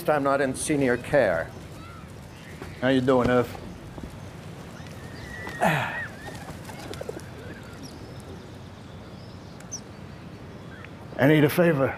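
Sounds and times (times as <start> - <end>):
speech: 0.0 - 1.6, 2.8 - 3.7, 5.6 - 6.0, 11.2 - 11.9
outdoor noise: 0.0 - 11.9
pigeon call: 4.8 - 8.4.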